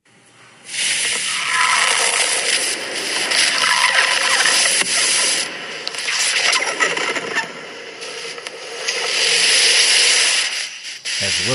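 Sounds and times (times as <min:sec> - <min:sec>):
red-hot steel ball bearings sizzling in a block of ice: 0:00.7 - 0:05.4, 0:09.1 - 0:11.5
sharp crackles and pops of hot steel on ice: 0:00.7 - 0:11.5.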